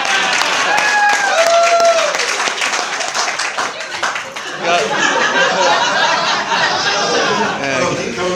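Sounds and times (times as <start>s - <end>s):
audience cheers and whoops: 0.0s - 2.5s
audience applause: 0.0s - 7.1s
crowd voices: 0.0s - 8.3s
laughter: 2.8s - 8.3s.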